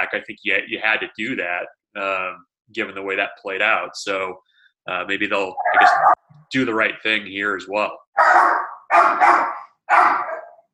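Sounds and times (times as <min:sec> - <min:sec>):
speech: 0:00.1 - 0:10.2
old dog barking angrily at a delivery: 0:05.6 - 0:06.2, 0:08.2 - 0:10.7.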